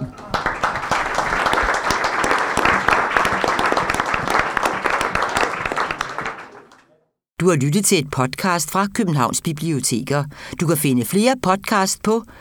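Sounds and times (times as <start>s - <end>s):
audience applause at a panel event: 0.0s - 7.0s
speech: 7.4s - 12.3s.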